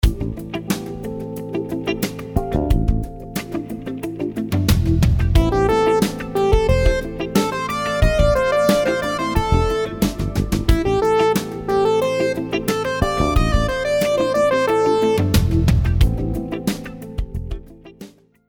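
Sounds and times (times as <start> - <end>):
syncopated sixteenth-note rhythm: 0.0 - 18.3.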